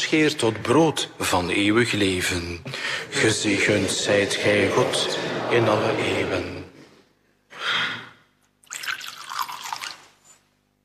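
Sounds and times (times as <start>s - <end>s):
speech: 0.1s - 6.6s
laughter: 2.7s - 7.0s
water poured into wine in a chalice during a church liturgy: 8.6s - 10.3s.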